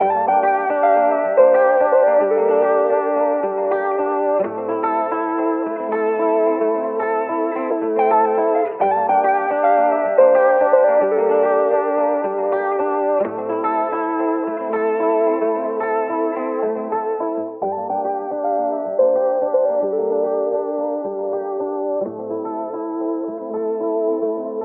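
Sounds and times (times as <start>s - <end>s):
afrobeats guitar melody in D minor: 0.0s - 24.6s.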